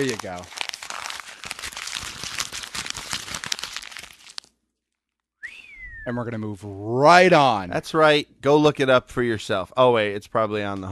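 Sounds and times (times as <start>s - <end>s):
speech: 0.0s - 0.6s, 6.0s - 10.9s
paper being crumpled into a ball: 0.0s - 4.5s.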